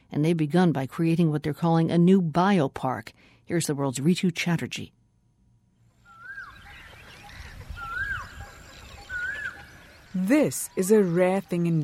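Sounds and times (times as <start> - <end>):
speech: 0.2 - 5.0, 10.2 - 11.8
loud swooping bird calls at a pond: 6.0 - 11.3
bird chatter of many birds at a pond: 6.1 - 11.8.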